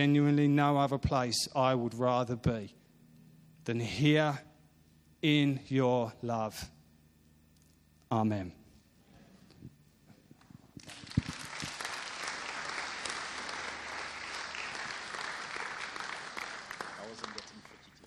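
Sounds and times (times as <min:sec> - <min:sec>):
speech: 0:00.0 - 0:02.8, 0:03.7 - 0:04.5, 0:05.2 - 0:06.8, 0:08.1 - 0:08.6
crowd applauding a speaker: 0:10.8 - 0:18.0.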